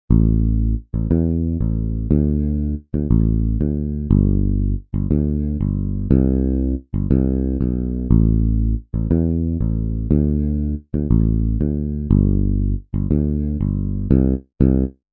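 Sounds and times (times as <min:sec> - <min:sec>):
bass line of a song: 0:00.0 - 0:15.1.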